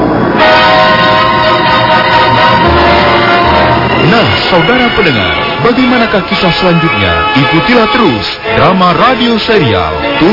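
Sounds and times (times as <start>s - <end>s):
train horn-like tone: 0.4s - 9.1s
continuous rumble of rolling train wagons: 1.4s - 7.5s
speech: 4.5s - 10.3s.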